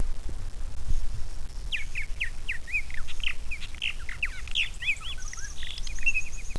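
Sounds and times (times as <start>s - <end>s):
purple martin song: 0.0s - 6.5s.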